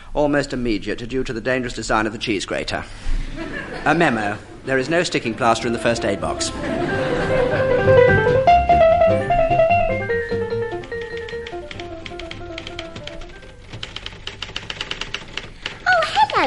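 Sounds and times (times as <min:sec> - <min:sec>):
speech: 0:00.2 - 0:07.0
laughter: 0:03.2 - 0:08.4
warm musical tone: 0:05.2 - 0:14.1
several typewriters clacking in an office typing pool: 0:09.7 - 0:16.4.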